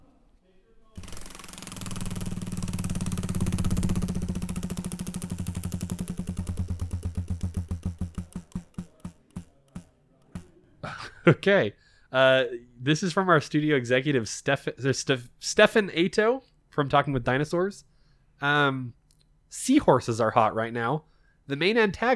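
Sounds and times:
wheel spun on a desk clattering: 1.0 - 10.5
speech: 11.2 - 22.1.

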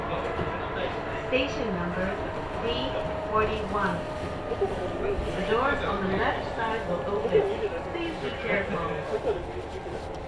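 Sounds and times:
low rumble of a moving commuter train: 0.0 - 10.2
students chattering in a commuter train carriage: 0.0 - 10.2.

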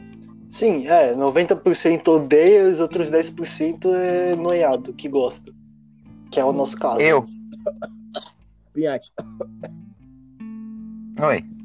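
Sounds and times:
speech: 0.5 - 5.6, 6.3 - 9.8, 11.2 - 11.6
person coughing: 2.9 - 3.2, 7.5 - 8.4, 9.2 - 9.8.

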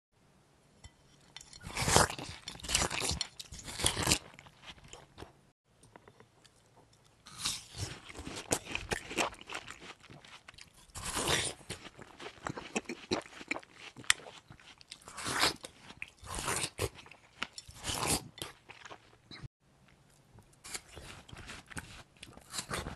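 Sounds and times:
watermelon being bitten and chewed with wet crisp crunching: 1.6 - 5.4, 7.2 - 19.4, 20.6 - 22.9.

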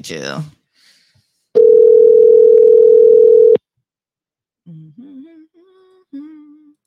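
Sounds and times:
telephone ringback tone while a call is placed: 1.6 - 3.6.

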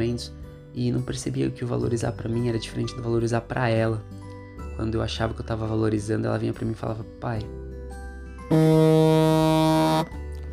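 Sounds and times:
speech: 0.0 - 7.7, 8.5 - 9.3
alarm clock buzzing: 8.5 - 10.1.

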